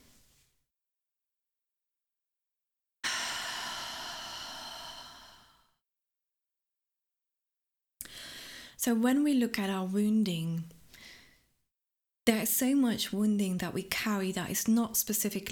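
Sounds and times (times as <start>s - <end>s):
deep breath taken together as a calming exercise: 3.0s - 5.8s, 8.0s - 8.8s
speech: 8.8s - 10.8s, 12.3s - 15.5s.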